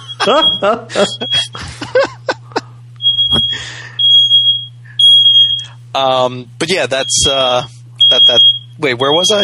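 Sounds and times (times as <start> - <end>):
smoke alarm beeping: 0.0 - 1.6, 3.0 - 5.8, 7.0 - 9.4
laughter: 0.0 - 3.9
speech: 0.2 - 2.2, 6.0 - 9.4.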